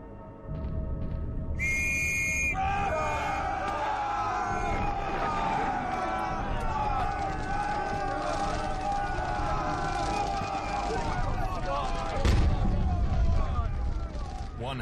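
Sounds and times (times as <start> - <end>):
rumbling battlefield noise: 0.5 - 14.8
officer's whistle blast signalling the attack: 1.6 - 2.6
many soldiers shouting as they advance: 2.5 - 14.6.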